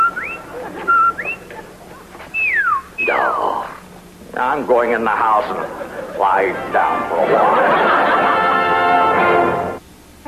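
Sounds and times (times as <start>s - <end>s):
person whistling a short tune: 0.0s - 1.4s, 2.4s - 2.9s
laughter: 0.0s - 2.4s, 5.0s - 9.7s
speech: 4.5s - 8.3s.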